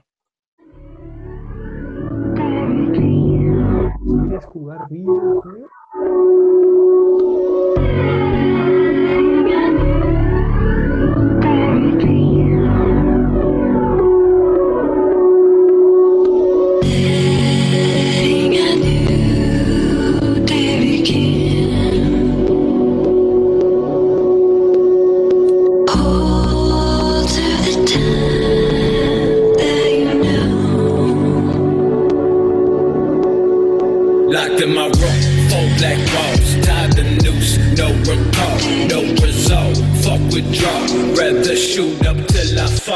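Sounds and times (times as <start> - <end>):
sample-based hip-hop beat with bass-heavy loop: 1.8 - 42.9
speech: 4.8 - 5.3.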